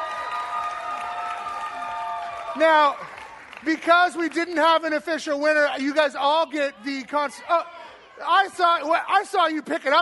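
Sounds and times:
audience clapping: 0.0 - 5.1
speech: 2.6 - 10.0.

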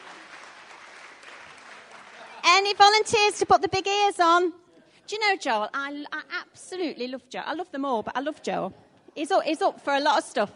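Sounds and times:
audience applause: 0.0 - 2.7
speech: 2.6 - 10.5.

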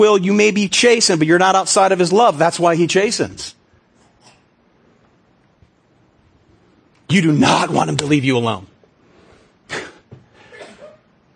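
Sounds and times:
speech: 0.0 - 3.6, 7.1 - 8.7
person sneezing: 9.7 - 11.1.

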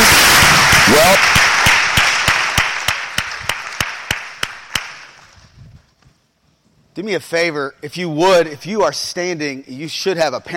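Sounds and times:
audience applause at a church children's ministry gathering: 0.0 - 5.0
sharp claps striking a steady rhythmic beat: 0.0 - 5.4
speech: 7.0 - 10.5.

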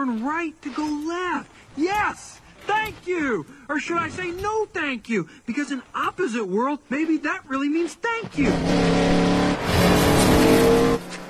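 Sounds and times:
speech: 0.0 - 9.1
car speeding past at high revs: 8.4 - 11.2.

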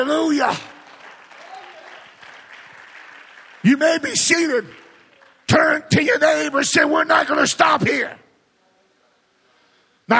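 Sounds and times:
speech: 0.0 - 0.7, 3.6 - 4.8, 5.5 - 8.2
audience applause: 0.5 - 5.5.

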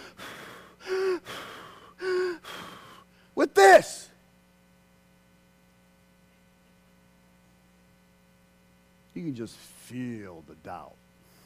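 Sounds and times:
wheezy gasping inhales: 0.0 - 3.3
person mimicking exhausted heavy breathing: 0.0 - 3.4, 11.2 - 11.4
speech: 3.4 - 4.0, 9.2 - 11.0.

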